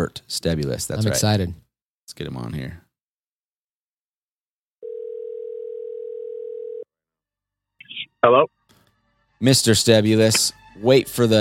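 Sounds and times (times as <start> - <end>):
speech: 0.0 - 2.8, 8.2 - 8.6, 9.4 - 11.3
telephone dial tone while a call is placed: 4.8 - 6.8.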